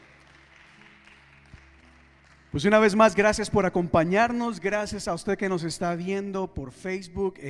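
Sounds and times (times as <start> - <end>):
crowd applauding: 0.0 - 3.8
speech: 2.5 - 7.4.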